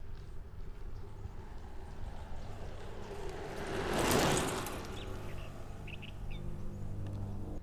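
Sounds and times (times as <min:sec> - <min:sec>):
mountain bike riding fast: 0:00.0 - 0:07.6.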